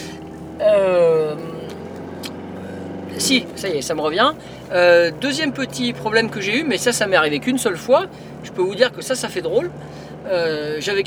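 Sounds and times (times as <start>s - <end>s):
road and engine rumble inside a moving car: 0.0s - 11.0s
speech: 3.3s - 11.0s.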